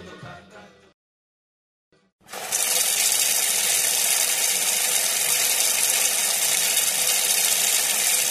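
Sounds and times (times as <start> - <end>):
water gushing from a tap: 2.3 - 8.2.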